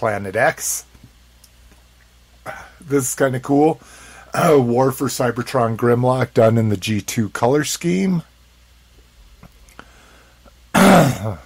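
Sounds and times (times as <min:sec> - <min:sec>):
speech: 0:00.0 - 0:00.9, 0:02.4 - 0:08.3, 0:10.8 - 0:11.4
loud guttural throat clearing: 0:10.8 - 0:11.4.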